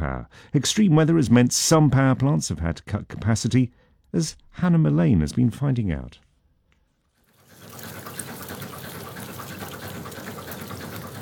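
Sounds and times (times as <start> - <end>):
speech: 0.0 - 6.2
fast-flowing water of the Upper Danube rushing in the mountains: 7.4 - 11.2.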